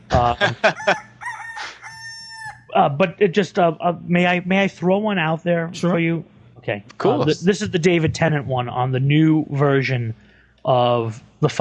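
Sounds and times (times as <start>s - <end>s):
laughter: 0.0s - 1.0s
speech: 0.2s - 1.7s, 2.8s - 11.5s
rooster crowing: 0.6s - 2.7s.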